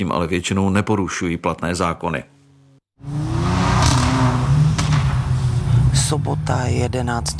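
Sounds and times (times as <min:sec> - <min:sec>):
speech: 0:00.0 - 0:02.4, 0:03.0 - 0:03.2, 0:06.1 - 0:07.3
sports car engines revving on a shopping-centre parking lot at night: 0:03.0 - 0:07.3.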